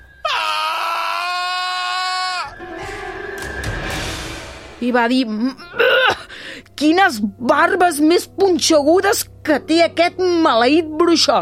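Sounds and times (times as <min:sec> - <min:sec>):
person screaming in pain: 0:00.3 - 0:02.5
speech: 0:04.8 - 0:05.8, 0:06.8 - 0:11.4.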